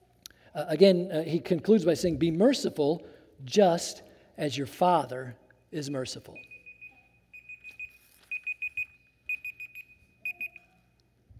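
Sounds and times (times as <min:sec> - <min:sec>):
speech: 0:00.6 - 0:06.5
digital timer alarm beeping high-pitched tones: 0:06.4 - 0:10.7.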